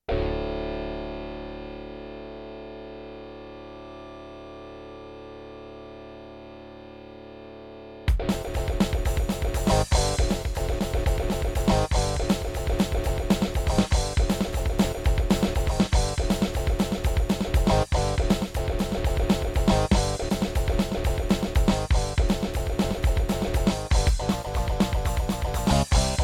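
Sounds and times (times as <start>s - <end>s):
Turtle Beach Tropez sound card test audio: 7.0s - 26.2s.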